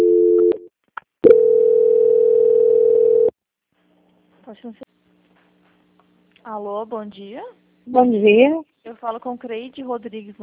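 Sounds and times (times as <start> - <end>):
telephone tones during call transfer: 1.2 - 3.3
speech: 4.6 - 4.8, 6.5 - 10.4.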